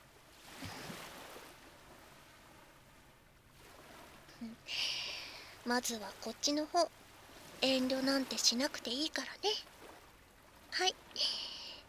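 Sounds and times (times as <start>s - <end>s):
ocean waves: 0.0s - 11.8s
speech: 4.4s - 5.0s, 5.6s - 7.0s, 7.6s - 9.7s, 10.8s - 11.4s.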